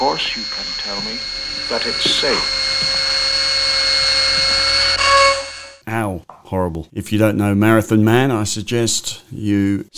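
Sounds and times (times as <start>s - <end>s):
speech: 0.0s - 3.0s, 6.5s - 9.9s
dental drill drilling into a healthy tooth: 0.0s - 5.8s.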